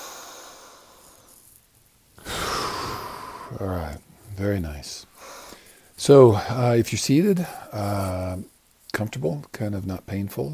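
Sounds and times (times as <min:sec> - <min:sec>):
deep breathing in and out during a guided seated breathing exercise: 0:00.0 - 0:01.5, 0:02.2 - 0:04.3, 0:05.0 - 0:06.0
speech: 0:03.5 - 0:05.4, 0:06.0 - 0:10.5.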